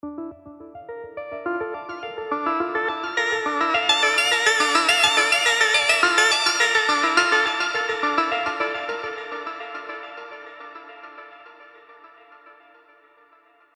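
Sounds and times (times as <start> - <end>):
synth loop in D on Spire: 2.4 - 9.8.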